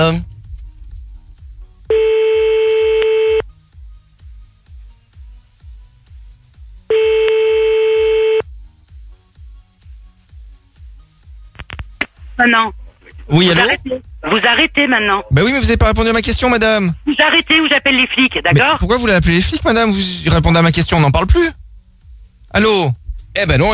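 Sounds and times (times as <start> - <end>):
speech: 0.0 - 0.3, 12.4 - 21.6, 22.5 - 23.7
rhythmic low pulsing: 0.0 - 11.5, 12.2 - 23.7
telephone ringback tone: 1.9 - 3.4, 6.9 - 8.4.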